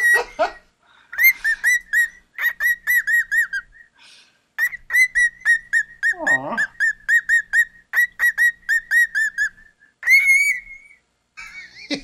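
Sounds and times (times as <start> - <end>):
pet bird whistling loudly into the microphone: 0.0 - 0.3, 1.2 - 4.0, 4.6 - 11.0.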